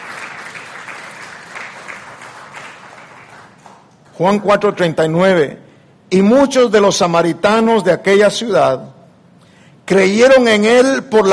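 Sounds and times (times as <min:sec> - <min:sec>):
crowd clapping in sustained applause: 0:00.0 - 0:03.9
speech: 0:04.2 - 0:08.9, 0:09.9 - 0:11.3.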